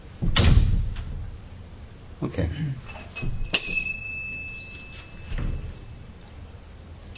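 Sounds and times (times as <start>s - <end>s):
door swinging shut with a solid thud: 0.2s - 1.3s, 5.3s - 5.8s
speech: 2.2s - 3.5s.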